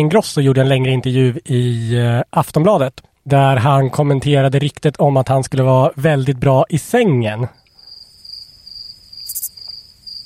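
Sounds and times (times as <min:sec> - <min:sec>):
speech: 0:00.0 - 0:07.6
crickets chirping: 0:07.6 - 0:10.2.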